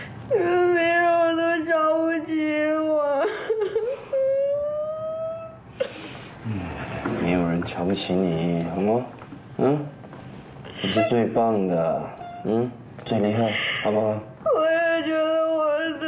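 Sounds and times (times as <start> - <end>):
person crying in drawn-out wails: 0.3 - 6.0, 14.5 - 16.0
speech: 7.7 - 10.0, 10.8 - 14.3.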